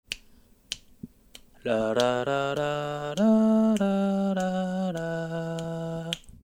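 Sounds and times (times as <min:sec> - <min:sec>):
vocal sample: 0:01.6 - 0:06.3.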